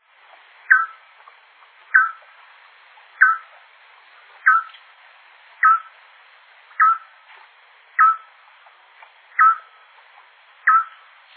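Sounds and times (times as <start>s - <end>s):
bacurau-cauda-barrada nightjar: 0.6s - 4.8s, 5.6s - 6.0s, 6.7s - 7.2s, 8.0s - 11.3s.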